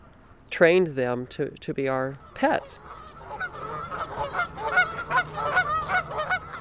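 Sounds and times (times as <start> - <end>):
speech: 0.5 - 3.0
flock of geese honking: 2.2 - 6.5.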